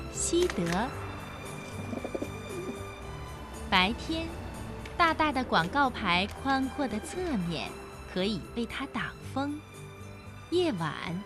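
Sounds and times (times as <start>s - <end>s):
speech: 0.3s - 1.1s, 3.7s - 4.4s, 5.0s - 9.7s, 10.5s - 11.2s
grey pigeon cooing: 1.8s - 2.9s.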